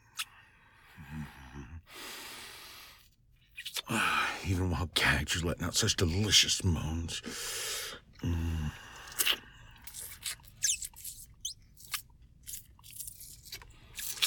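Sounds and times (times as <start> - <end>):
soft biting on skin: 3.5 - 3.9, 9.0 - 14.2
speech: 3.9 - 8.4.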